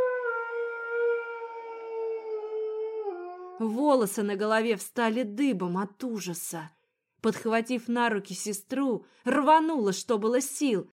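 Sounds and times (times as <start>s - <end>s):
long drawn-out mournful howl in an underground corridor: 0.0s - 3.7s
speech: 3.6s - 10.9s.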